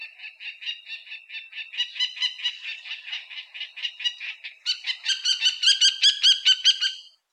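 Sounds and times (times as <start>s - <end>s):
Common kestrel giving rapid shrill harmonic-rich calls: 0.2s - 7.2s.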